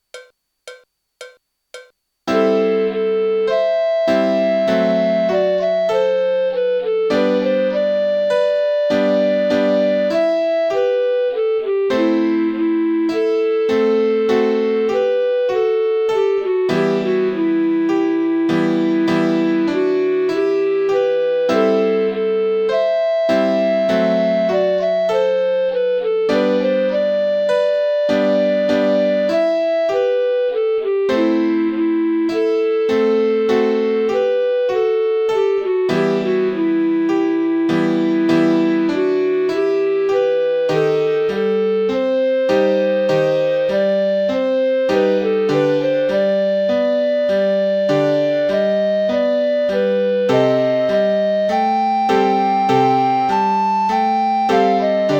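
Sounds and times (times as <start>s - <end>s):
piano melody: 0.0s - 55.1s.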